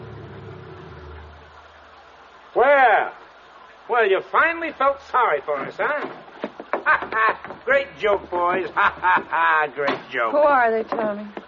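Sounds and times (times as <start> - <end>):
car engine idling as the car arrives: 0.0 - 2.0
speech: 3.9 - 6.2, 6.9 - 11.4
laughter: 6.8 - 10.0.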